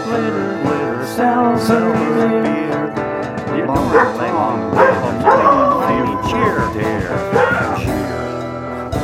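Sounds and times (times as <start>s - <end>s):
person singing: 0.0s - 8.0s
speech: 0.1s - 0.4s, 1.2s - 2.7s, 3.7s - 5.6s
dog barking: 3.9s - 7.8s.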